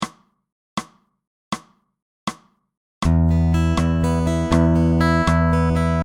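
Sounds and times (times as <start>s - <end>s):
fingerpicked guitar playing eighth note triplets: 3.1s - 6.0s.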